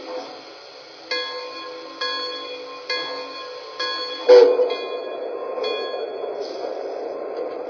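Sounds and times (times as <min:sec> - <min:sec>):
rumble of rolling passenger train equipment: 0:00.0 - 0:07.6
passenger train bell clanging at a station platform: 0:01.0 - 0:06.6.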